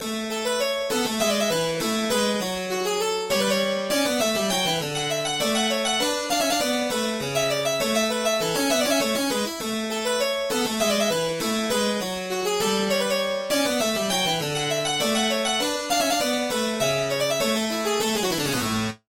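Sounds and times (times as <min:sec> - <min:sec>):
harpsichord solo: 0:00.0 - 0:19.0.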